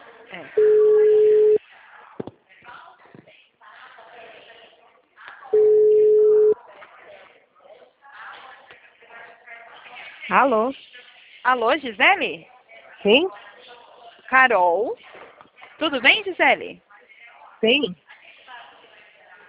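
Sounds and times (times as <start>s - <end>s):
speech: 0.3s - 0.8s, 10.3s - 13.5s, 14.3s - 15.1s, 15.8s - 16.8s, 17.6s - 18.0s
telephone ringback tone on an outgoing call: 0.6s - 1.6s, 5.6s - 6.6s.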